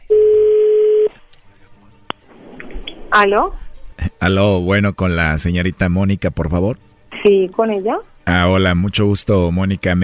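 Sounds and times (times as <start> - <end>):
telephone line tone as a phone call goes through: 0.0 - 1.1
speech: 3.2 - 10.0.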